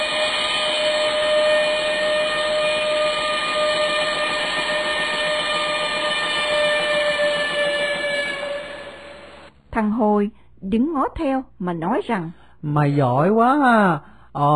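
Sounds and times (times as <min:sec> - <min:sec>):
steam train whistle on departing a station: 0:00.0 - 0:09.5
speech: 0:10.2 - 0:14.5.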